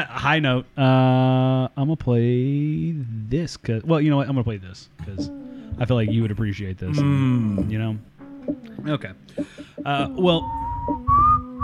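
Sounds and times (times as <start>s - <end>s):
speech: 0.0s - 11.3s
whistling: 10.2s - 11.6s.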